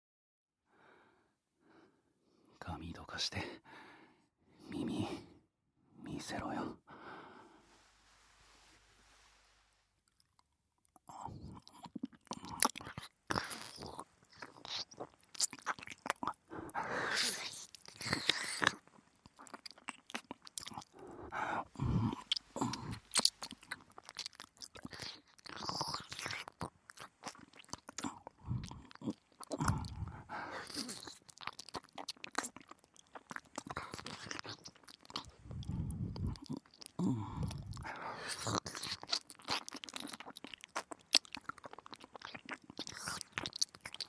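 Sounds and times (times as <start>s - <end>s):
speech: 2.8s - 3.8s, 6.2s - 6.8s
wet licking and mouth sounds at a right ear: 11.5s - 44.0s.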